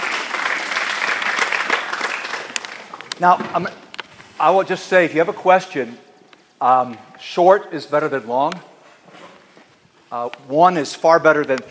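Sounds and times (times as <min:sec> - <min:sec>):
audience clapping in a room: 0:00.0 - 0:03.2
speech: 0:03.2 - 0:03.8, 0:04.4 - 0:06.0, 0:06.6 - 0:08.7, 0:10.1 - 0:11.6.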